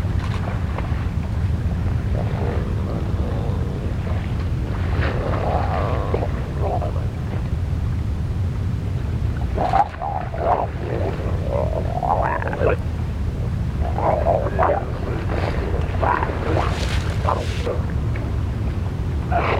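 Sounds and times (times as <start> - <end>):
steady low rumble: 0.0 - 19.5
harbor seal moaning growls and warbling grunts: 1.9 - 7.5, 9.5 - 18.0, 19.2 - 19.5.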